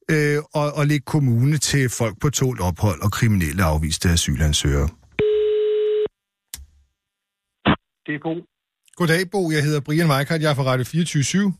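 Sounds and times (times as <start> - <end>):
speech: 0.1 - 5.0, 8.1 - 11.5
telephone ringing tone while placing a call: 5.2 - 6.1.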